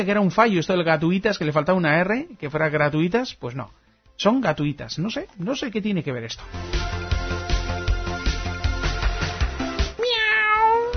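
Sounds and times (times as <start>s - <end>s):
speech: 0.0s - 7.0s
rhythmic beat-driven music loop: 6.4s - 10.0s
cat meowing: 10.0s - 10.9s.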